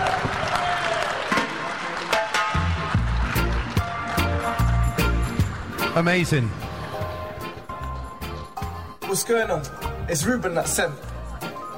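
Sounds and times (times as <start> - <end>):
crowd clapping and cheering: 0.0 - 8.8
speech: 6.0 - 6.7, 9.1 - 11.1.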